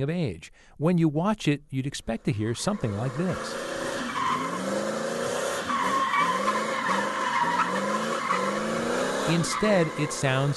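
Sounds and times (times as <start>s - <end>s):
speech: 0.0s - 3.7s, 9.3s - 10.5s
car engine roaring: 2.4s - 10.5s
car tires squealing and skidding doing donuts: 2.6s - 10.5s.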